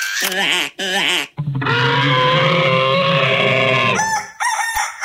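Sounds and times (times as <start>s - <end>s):
squawking and clucking: 0.1s - 4.9s
rooster crowing: 2.1s - 5.0s.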